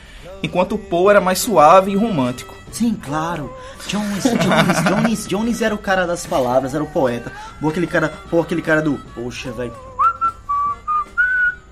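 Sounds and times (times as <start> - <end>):
speech: 0.2 - 9.9
laughter: 3.8 - 5.5
person whistling a short tune: 7.2 - 11.7.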